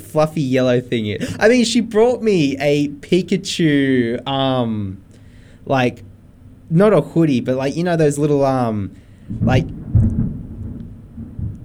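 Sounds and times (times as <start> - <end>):
speech: 0.1 - 5.0, 5.7 - 6.1, 6.7 - 9.8
deep rumbling thunder: 9.2 - 11.6.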